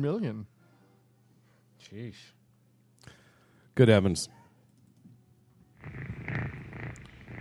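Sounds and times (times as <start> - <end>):
speech: 0.0 - 0.6, 1.8 - 2.4, 3.8 - 4.4
cat purring: 5.8 - 7.3.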